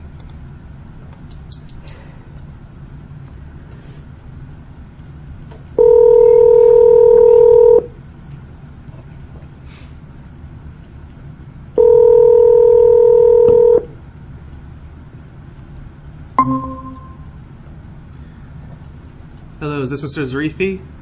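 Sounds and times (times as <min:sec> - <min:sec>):
steady loud electronic telephone line tones as a call is placed: 0:05.8 - 0:07.8, 0:11.8 - 0:13.8, 0:16.4 - 0:17.2
speech: 0:19.9 - 0:21.0.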